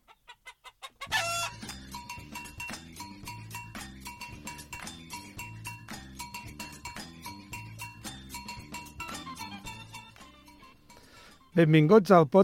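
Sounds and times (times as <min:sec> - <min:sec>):
hen clucking: 0:00.0 - 0:01.8
bouncy instrumental jingle with steady rhythmic percussion: 0:01.2 - 0:11.6
speech: 0:11.6 - 0:12.4.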